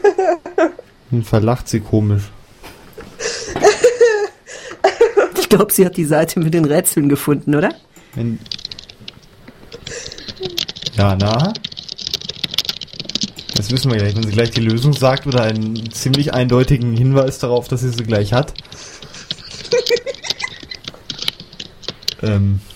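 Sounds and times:
speech: 1.1 - 2.4, 5.5 - 8.6, 11.0 - 11.6, 13.6 - 18.6, 22.2 - 22.7
person laughing: 3.2 - 5.6, 9.8 - 10.6, 18.7 - 21.3
computer keyboard typing: 8.0 - 22.3.

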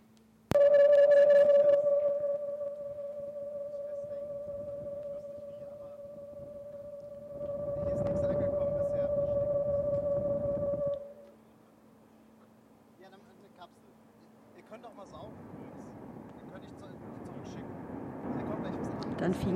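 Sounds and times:
modulated radio data signal possibly 4-PSK: 0.5 - 11.3.

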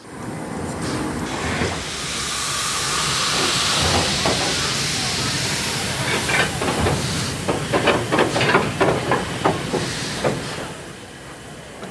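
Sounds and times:
steam locomotive hissing steam: 0.0 - 11.8.

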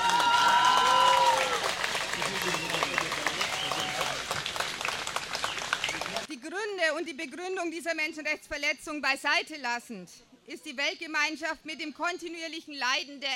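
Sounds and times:
large audience clapping: 0.0 - 6.3
faint whistles or calls from the audience: 2.4 - 4.1
speech: 7.1 - 13.3.

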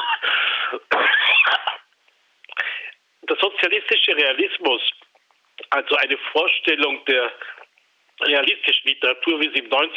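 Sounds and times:
loud raspy coughs: 0.0 - 1.9
speech: 3.4 - 5.0, 5.7 - 7.6, 8.2 - 9.9.

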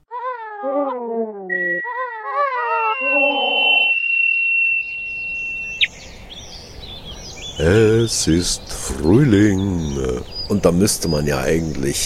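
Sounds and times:
long thin whistled note: 1.5 - 5.9
wavering mewing bird calls: 1.5 - 11.7
rustling windy background: 4.5 - 12.0
speech: 7.6 - 12.0.

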